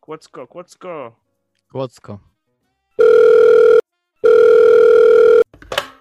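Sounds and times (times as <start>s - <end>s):
speech: 0.1s - 2.3s
telephone line tones while a call connects: 3.0s - 5.5s.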